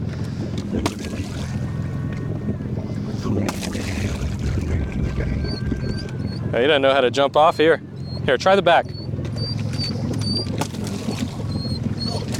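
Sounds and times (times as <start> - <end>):
water splashing from strokes of an extendable oar: 0.0 - 12.3
wind noise: 2.0 - 6.7
speech: 6.6 - 9.0.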